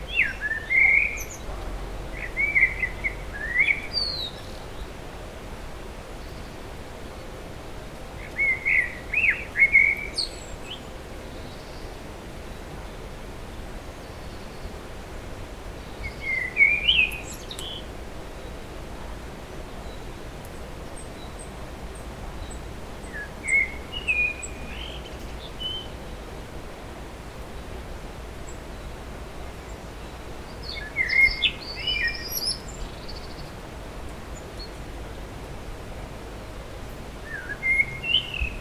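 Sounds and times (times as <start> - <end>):
common blackbird Turdus merula singing: 0.0 - 4.9, 8.2 - 11.9, 15.9 - 17.8, 22.4 - 26.0, 30.5 - 33.6, 37.2 - 38.5.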